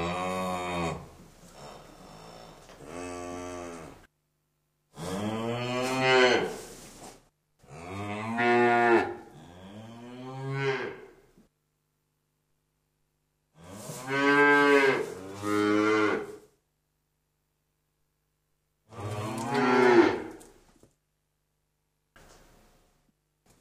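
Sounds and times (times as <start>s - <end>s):
cow giving long deep moos: 2.8s - 4.0s, 5.0s - 6.6s, 7.7s - 11.1s, 13.6s - 16.4s, 18.9s - 20.4s.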